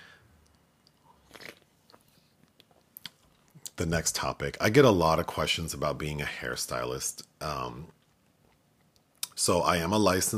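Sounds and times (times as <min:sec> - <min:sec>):
person sipping a drink with a slurping burst: 0:00.9 - 0:03.2
speech: 0:03.8 - 0:08.0, 0:09.4 - 0:10.3.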